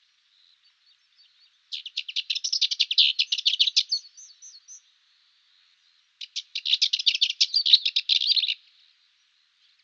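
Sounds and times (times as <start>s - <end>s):
Cyprus warbler singing harsh quick chattering song: 0.4s - 4.9s, 6.2s - 8.7s.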